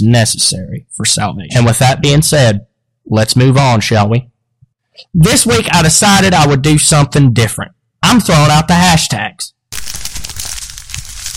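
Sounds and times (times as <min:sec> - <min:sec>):
speech: 0:00.0 - 0:04.3, 0:05.0 - 0:09.6
paper being crumpled: 0:09.7 - 0:11.3.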